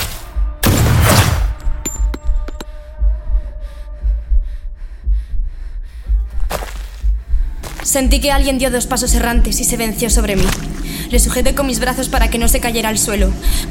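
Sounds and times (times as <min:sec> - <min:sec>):
loud sharp gunshots with tail: 0:00.6 - 0:01.6
low rumble: 0:01.4 - 0:13.6
speech: 0:07.9 - 0:13.6.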